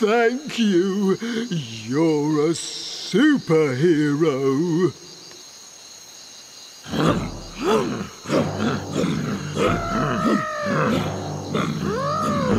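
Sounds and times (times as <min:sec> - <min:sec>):
speech: 0:00.0 - 0:05.1, 0:06.9 - 0:12.5
elephants making deep rumbling groans: 0:06.9 - 0:12.5.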